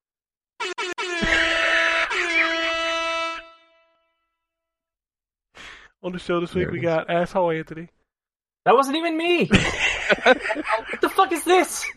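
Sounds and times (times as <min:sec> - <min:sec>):
air horn blaring: 0:00.6 - 0:04.2
speech: 0:06.0 - 0:08.0, 0:08.6 - 0:11.9
laughter: 0:09.5 - 0:11.9.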